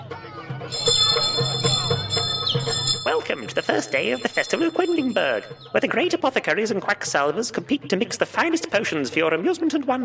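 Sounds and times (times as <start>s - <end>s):
low murmur of bustle: 0.0s - 10.0s
town crier ringing a hand bell outside a tent: 0.7s - 6.2s
speech: 3.4s - 10.0s.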